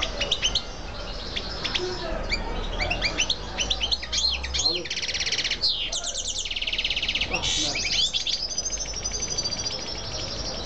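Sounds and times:
female canary song with chirps trills and buzzy rolls: 0.0s - 10.6s.

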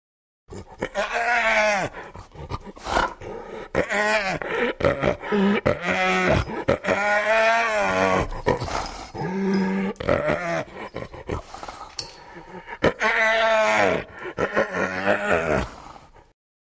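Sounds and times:
hyena groaning cries: 0.5s - 16.1s.

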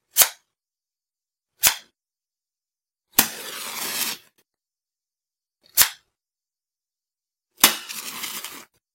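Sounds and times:
match lighting: 3.2s - 4.4s, 7.6s - 8.8s.

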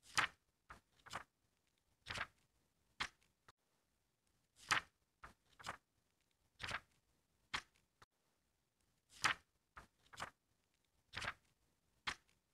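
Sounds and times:
book pages flipping: 0.0s - 3.4s, 4.6s - 7.9s, 9.1s - 12.4s.

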